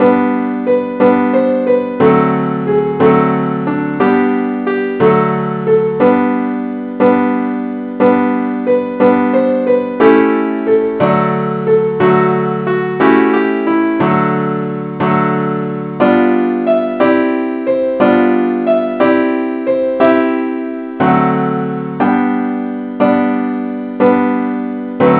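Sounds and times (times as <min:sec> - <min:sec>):
simple accompaniment in G: 0:00.0 - 0:25.1.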